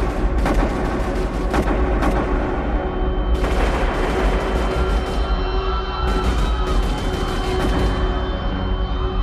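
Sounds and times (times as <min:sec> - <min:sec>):
gunshots from gunmen in a mosque courtyard in Mecca: 0:00.0 - 0:08.4.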